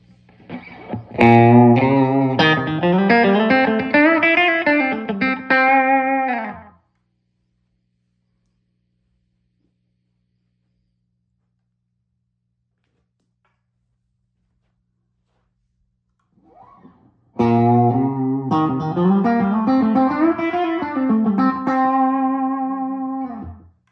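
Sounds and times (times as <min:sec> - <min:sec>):
distorted electric guitar solo through an amplifier with and without a baffle: 0:00.4 - 0:06.8, 0:17.4 - 0:23.7.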